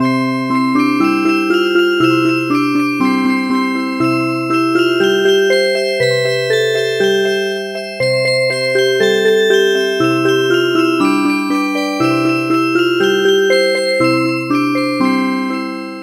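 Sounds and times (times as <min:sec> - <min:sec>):
music box playing a traditional melody: 0:00.0 - 0:16.0.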